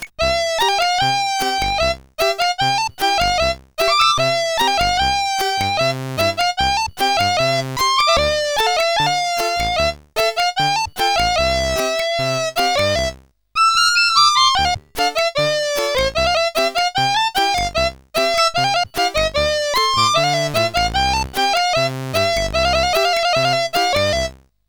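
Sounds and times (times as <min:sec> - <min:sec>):
ringtone in Arabic style played on CSG8580R5 SID chip: 0:00.3 - 0:13.1, 0:14.2 - 0:24.3.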